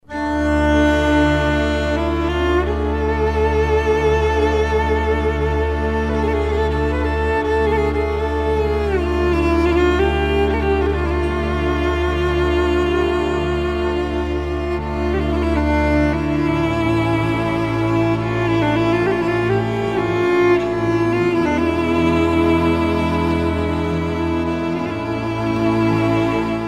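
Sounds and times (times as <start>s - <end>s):
Serbian ethno music: 0.0s - 26.6s.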